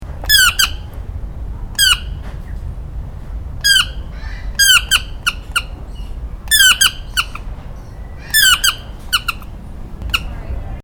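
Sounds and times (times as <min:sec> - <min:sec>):
toucan calling: 0:00.2 - 0:00.9, 0:01.8 - 0:02.6, 0:03.6 - 0:10.4.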